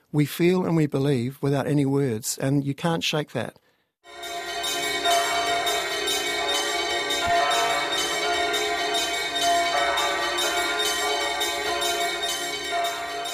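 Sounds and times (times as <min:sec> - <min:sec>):
speech: 0:00.1 - 0:04.4
bells ringing together in overlapping tones: 0:04.1 - 0:13.3.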